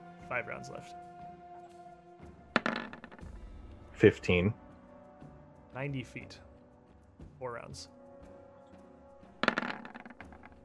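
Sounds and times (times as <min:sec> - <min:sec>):
speech: 0:00.3 - 0:01.1, 0:04.0 - 0:04.6, 0:05.7 - 0:06.5, 0:07.4 - 0:08.0
dice rolling on a hard table: 0:02.6 - 0:03.2, 0:09.4 - 0:10.6.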